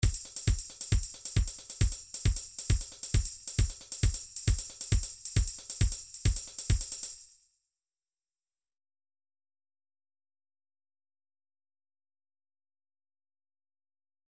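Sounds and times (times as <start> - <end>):
trance MIDI loop beats: 0.0 - 7.1.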